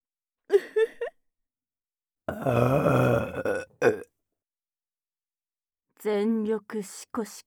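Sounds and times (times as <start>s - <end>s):
person belching on purpose: 2.3s - 4.1s
speech: 2.4s - 3.0s, 6.0s - 7.4s.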